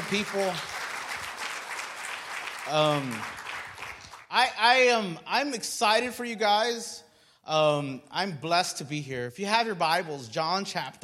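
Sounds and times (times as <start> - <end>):
audience applause at a church service: 0.0 - 4.3
speech: 0.1 - 0.7, 2.7 - 3.4, 4.3 - 11.0.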